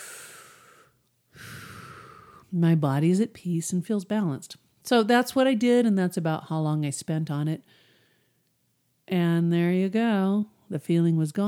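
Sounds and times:
deep breath taken during a relaxation exercise: 0.0 - 2.5, 7.7 - 8.5
speech: 2.5 - 7.8, 9.1 - 11.4.

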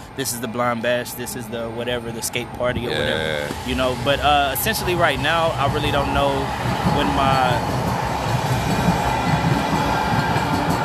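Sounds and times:
train rumbling past: 0.0 - 10.8
speech: 0.2 - 7.8
rhythmic clatter of train wheels: 3.4 - 10.8.

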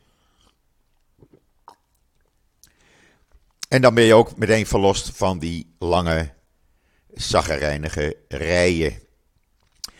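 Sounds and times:
person sipping water: 0.1 - 3.7, 9.4 - 9.9
slurping mouth clicks: 0.4 - 3.7, 9.4 - 9.9
person swallowing water: 0.9 - 2.8
speech: 3.7 - 6.4, 7.1 - 9.0.

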